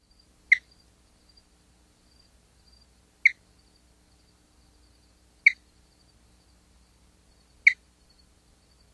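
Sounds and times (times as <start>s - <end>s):
spotted chirping frog chirping: 0.5s - 0.8s, 3.2s - 3.4s, 5.4s - 5.7s, 7.6s - 7.9s.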